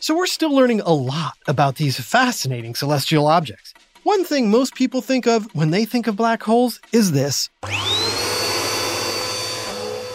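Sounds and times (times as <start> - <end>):
speech: 0.0 - 8.2
vacuum cleaner sucking up chocolate-frosted donut crumbs: 7.0 - 10.1.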